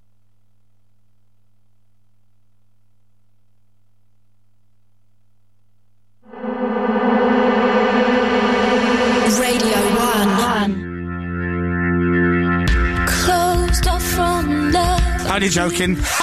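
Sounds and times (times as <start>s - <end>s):
sustained synth chords: 6.2s - 14.9s
bright crashing accents: 6.3s - 11.1s
radio station jingle with processed sung voices: 6.3s - 11.2s
speech: 15.5s - 16.2s.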